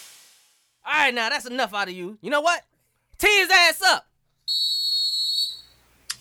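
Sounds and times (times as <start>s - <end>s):
speech: 1.0s - 4.7s
loud shrill whistle blast as segment sound effect: 4.5s - 5.8s.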